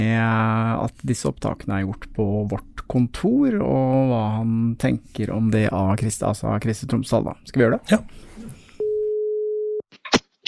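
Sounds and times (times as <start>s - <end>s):
speech: 0.0s - 8.4s
telephone ringback tone as a call is placed to a journalist: 8.8s - 9.8s.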